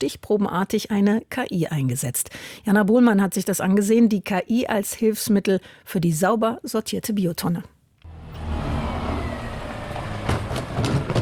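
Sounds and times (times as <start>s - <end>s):
speech: 0.0s - 7.8s
large garbage truck engine rumbling: 8.1s - 11.1s.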